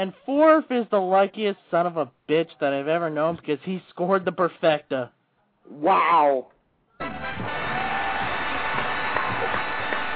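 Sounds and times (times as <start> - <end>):
speech: 0.0 - 7.5
crowd applause and cheering: 7.0 - 10.1.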